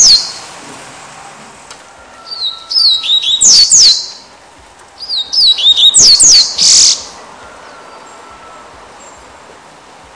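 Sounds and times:
Double-collared Seedeater song of high slurred whistles: 0.0 - 0.4, 1.8 - 4.4, 5.0 - 9.2.

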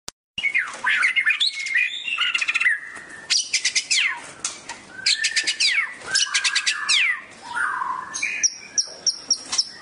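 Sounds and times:
Oriental magpie-robin delivering rapid buzzy trills and whistled slurs: 0.4 - 9.8.

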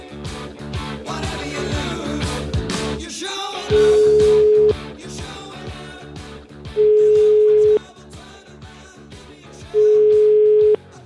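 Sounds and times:
busy music: 0.0 - 11.0
telephone line ringing tone while a call is placed: 3.7 - 4.8, 6.8 - 7.8, 9.8 - 10.8.

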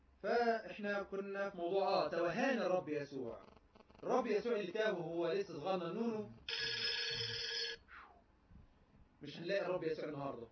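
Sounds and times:
speech: 0.2 - 6.6, 9.2 - 10.4
telephone ringing with an incoming call: 6.4 - 7.8.

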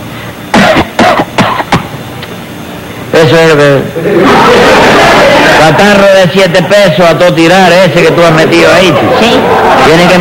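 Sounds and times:
forced exaggerated coughing faking a cold: 0.5 - 2.0
speech: 3.2 - 4.8, 5.7 - 10.1
laughter: 3.9 - 6.1, 8.0 - 10.1.

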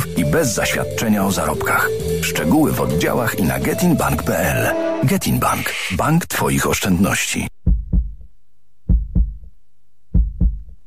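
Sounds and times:
speech: 0.3 - 7.6
heartbeat of a man in his forties or fifties: 7.7 - 8.3, 8.9 - 9.5, 10.1 - 10.8.

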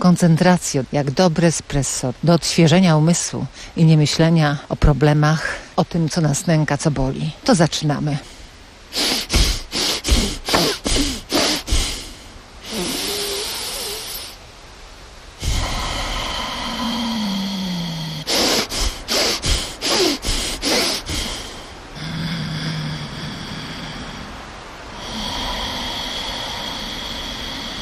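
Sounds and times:
speech: 0.0 - 8.3
long steady airy breaths through the nose during a connected-breath exercise: 3.1 - 3.8, 8.1 - 27.8
quick forceful sniffing breaths through the nose during a connected-breath exercise: 8.9 - 12.1, 18.3 - 21.5.

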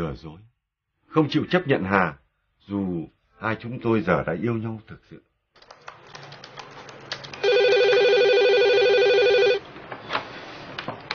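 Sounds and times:
speech: 0.0 - 0.5, 1.1 - 5.3
telephone ringing with a bright electronic trill: 7.4 - 9.6.

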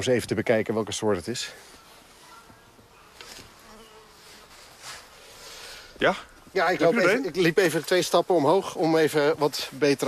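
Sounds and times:
speech: 0.0 - 1.9, 6.0 - 10.0
bee buzzing caught in an insect net: 3.0 - 5.6.

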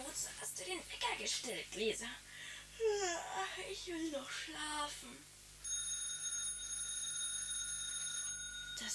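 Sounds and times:
speech: 0.2 - 5.3
electric doorbell ringing: 5.6 - 8.9.

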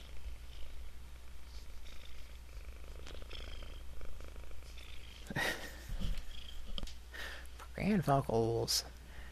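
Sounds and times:
cat purring: 0.0 - 7.1
speech: 7.8 - 9.0.

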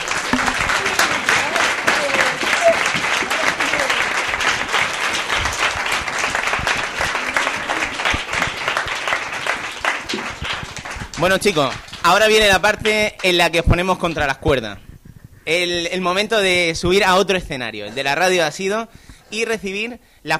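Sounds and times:
audience applauding at a live radio interview event: 0.0 - 13.5
speech: 11.2 - 20.3.

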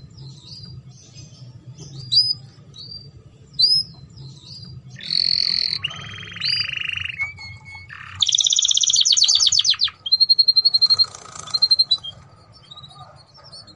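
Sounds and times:
Belgian canary singing: 0.0 - 13.7.

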